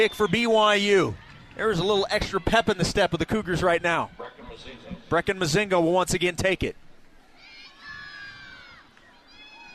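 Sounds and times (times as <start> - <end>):
large stadium crowd cheering at soccer match: 0.0 - 5.3, 7.3 - 9.7
speech: 0.0 - 6.8.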